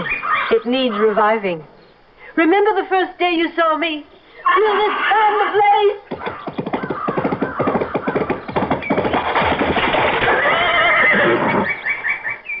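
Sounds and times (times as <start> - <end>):
speech: 0.5 - 1.7, 2.4 - 6.0
horse whinnying loudly: 4.4 - 12.4
horse galloping toward a high stone wall: 4.5 - 12.3.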